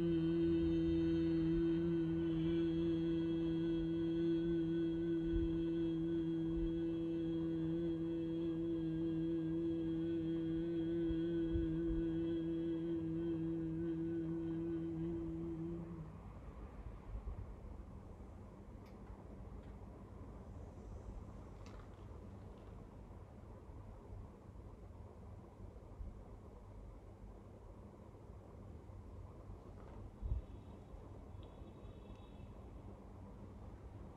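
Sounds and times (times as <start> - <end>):
group humming a steady droning tone on one breath: 0.0 - 16.1
faint room noise: 0.0 - 34.1.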